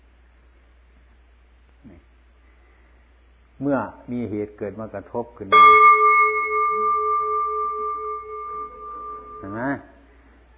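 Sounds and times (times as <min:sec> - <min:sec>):
speech: 0:03.6 - 0:05.8, 0:09.4 - 0:09.9
struck bell ringing: 0:05.5 - 0:09.8.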